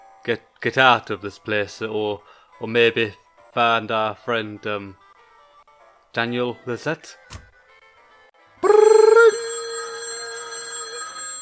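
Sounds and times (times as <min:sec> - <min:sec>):
speech: 0:00.2 - 0:05.0, 0:06.1 - 0:07.2
telephone bell ringing: 0:08.6 - 0:11.4.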